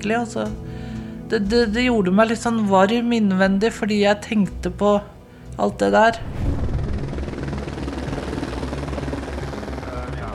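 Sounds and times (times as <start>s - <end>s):
speech: 0.0s - 0.7s, 1.3s - 6.5s
rescue helicopter rotor throbbing overhead: 6.0s - 10.3s.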